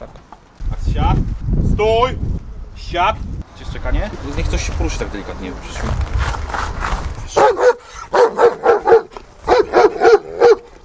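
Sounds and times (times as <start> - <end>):
speech: 1.0 - 6.9
police service dog barking: 7.3 - 10.7.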